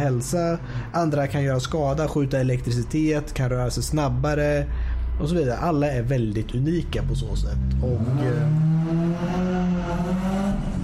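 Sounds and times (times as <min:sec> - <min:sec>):
speech: 0:00.0 - 0:10.0
cars racing on the street outside: 0:06.8 - 0:10.8.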